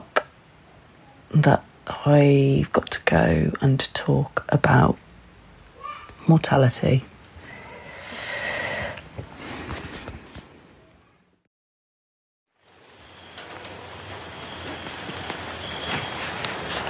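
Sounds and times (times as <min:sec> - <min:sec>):
steady rain pattering on a balcony: 0:00.0 - 0:07.4, 0:12.5 - 0:16.8
speech: 0:01.3 - 0:05.0, 0:06.3 - 0:07.1.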